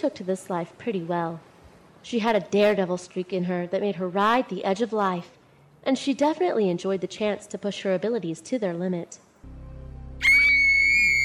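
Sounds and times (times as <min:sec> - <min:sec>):
speech: 0:00.0 - 0:09.6
woman screaming: 0:10.2 - 0:11.2.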